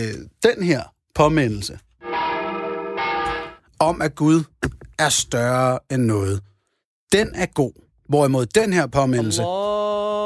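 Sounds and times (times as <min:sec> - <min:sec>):
speech: 0:00.0 - 0:01.9, 0:03.8 - 0:06.5, 0:07.1 - 0:10.1
church bells ringing: 0:02.0 - 0:03.6.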